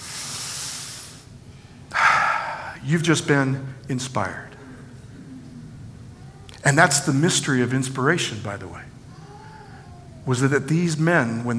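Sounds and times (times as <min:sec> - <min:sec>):
audience taking a deep breath in together: 0:00.0 - 0:01.3, 0:01.9 - 0:02.8
speech: 0:02.9 - 0:04.5, 0:06.6 - 0:08.9, 0:10.3 - 0:11.5.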